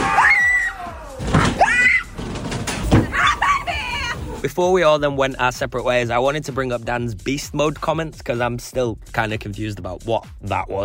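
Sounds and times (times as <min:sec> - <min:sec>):
people screaming inside a haunted house: 0:00.0 - 0:02.2, 0:03.0 - 0:04.4
thumps and bangs: 0:00.8 - 0:03.7
speech: 0:04.6 - 0:10.8.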